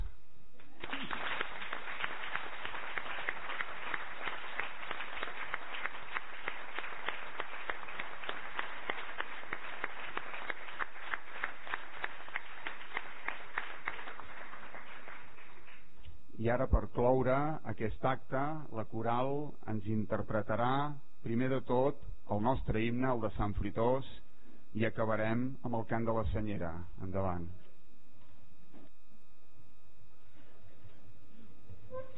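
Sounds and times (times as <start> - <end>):
large crowd applauding speakers: 0.6 - 16.0
speech: 16.5 - 27.6.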